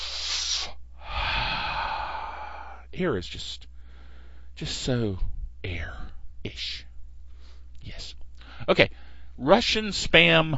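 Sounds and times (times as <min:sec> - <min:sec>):
deep cleansing breaths: 0:00.0 - 0:02.9, 0:03.7 - 0:04.6, 0:07.3 - 0:07.8, 0:08.4 - 0:09.4
speech: 0:03.0 - 0:03.7, 0:04.6 - 0:06.9, 0:07.8 - 0:10.5.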